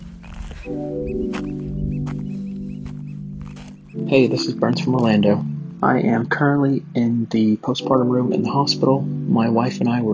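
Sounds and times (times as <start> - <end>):
oystercatchers piping high calls on an island: 0.0 - 6.1
speech: 0.6 - 1.6, 4.0 - 10.1.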